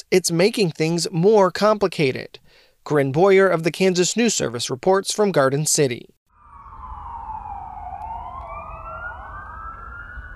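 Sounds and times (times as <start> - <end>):
speech: 0.1 - 6.2
ambulance siren wailing in rural western Kansas: 6.3 - 10.3
low rumble of road noise: 6.8 - 10.3.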